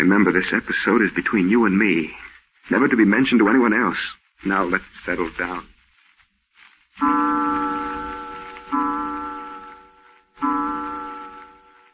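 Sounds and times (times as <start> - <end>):
speech: 0.0 - 5.7, 7.0 - 7.3
clock striking twelve with bell-like chimes: 7.0 - 11.9.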